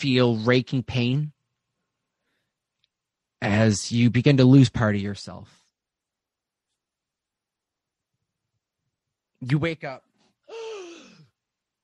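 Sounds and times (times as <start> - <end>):
speech: 0.0 - 1.4, 3.4 - 5.6, 9.4 - 10.6
person gasping for air coming up from pool water: 10.5 - 11.3.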